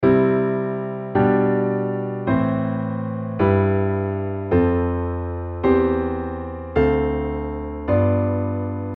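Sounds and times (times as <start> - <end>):
piano: 0.0 - 8.9.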